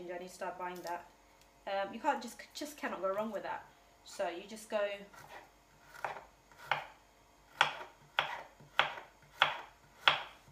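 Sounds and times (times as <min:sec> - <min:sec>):
speech: 0:00.2 - 0:05.4
knife finely chopping a big clove of garlic on a board: 0:05.2 - 0:07.0, 0:07.6 - 0:10.4.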